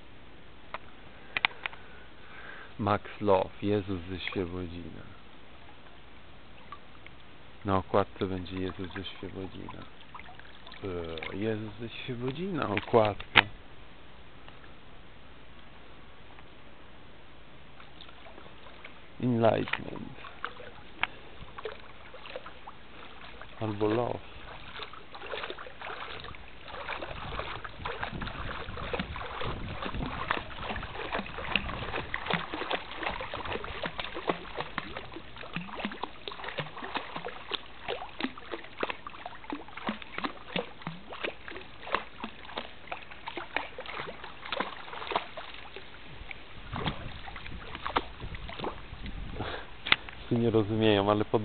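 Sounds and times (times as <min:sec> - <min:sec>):
speech: 0:02.8 - 0:05.2, 0:07.6 - 0:10.0, 0:10.8 - 0:13.6, 0:19.2 - 0:20.3, 0:23.6 - 0:24.3
foot splashing water in a pool: 0:08.0 - 0:13.6, 0:17.7 - 0:51.2.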